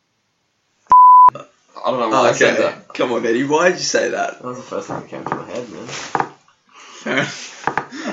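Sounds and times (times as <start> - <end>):
pure-tone censorship bleep: 0.9 - 1.4
speech: 1.3 - 6.2, 7.0 - 7.6.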